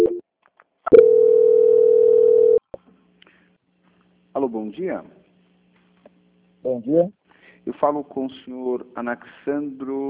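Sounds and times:
telephone line tone during call transfer: 0.0s - 0.2s, 0.9s - 2.6s
speech: 4.4s - 5.2s, 6.6s - 10.0s.

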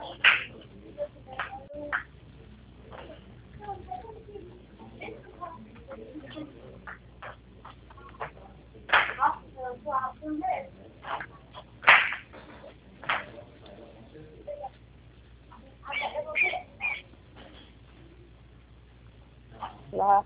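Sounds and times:
low noise: 0.0s - 20.2s
voices: 0.0s - 20.2s
small bird chirping: 15.9s - 17.1s.

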